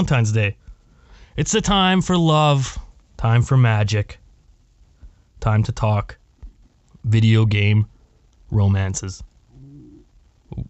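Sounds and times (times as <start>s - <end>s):
speech: 0.0s - 0.6s, 1.4s - 4.2s, 5.4s - 6.2s, 7.0s - 7.9s, 8.5s - 9.3s
low drawn-out stomach growl: 9.4s - 10.6s.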